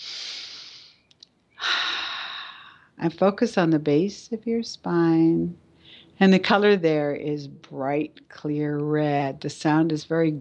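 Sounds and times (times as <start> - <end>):
deep breaths during a guided meditation: 1.6 - 3.0, 5.8 - 6.2
speech: 3.0 - 5.6, 6.2 - 10.3.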